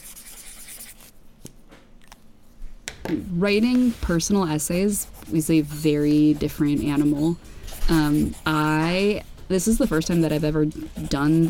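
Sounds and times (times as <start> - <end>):
pen scratching across paper: 0.0 - 1.1, 3.8 - 11.4
quiet hum: 0.0 - 11.4
speech: 3.1 - 11.4.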